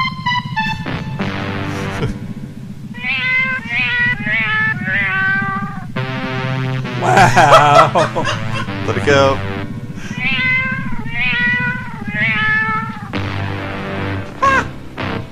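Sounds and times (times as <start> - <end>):
steady low musical backing: 0.0 - 15.3
laughter: 1.8 - 2.2, 7.0 - 9.1, 14.4 - 14.7
cat meows carrying a sung jingle-like melody: 3.0 - 5.9, 10.1 - 13.1
speech: 7.4 - 9.5.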